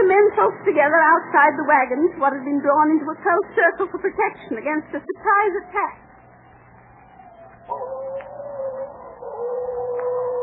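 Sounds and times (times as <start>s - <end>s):
speech: 0.3s - 6.1s, 7.7s - 8.4s
coyotes howling: 5.2s - 10.4s.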